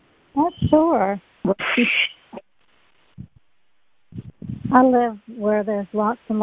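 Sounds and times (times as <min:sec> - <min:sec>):
speech: 0:00.4 - 0:02.1, 0:04.7 - 0:06.4
loud harsh bird squawk outdoors in Louisiana in an area with lots of trees: 0:01.5 - 0:02.4
short faint bird calls: 0:01.6 - 0:02.4.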